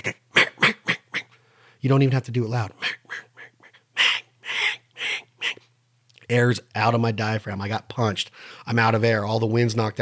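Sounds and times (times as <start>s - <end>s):
speech: 0.0s - 0.2s, 1.8s - 3.0s, 6.3s - 10.0s
human voice imitating a hen mallard duck quacking: 0.0s - 1.4s, 2.7s - 5.6s.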